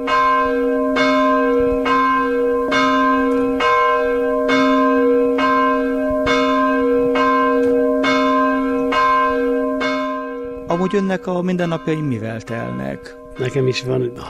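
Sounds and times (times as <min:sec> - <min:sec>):
church bell tolling at noon: 0:00.0 - 0:14.2
speech: 0:10.9 - 0:14.2.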